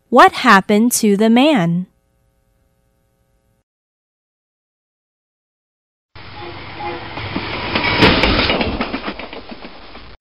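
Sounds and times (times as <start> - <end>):
speech: 0.1 - 1.9
northbound train clickety-clack on rails: 6.3 - 10.2.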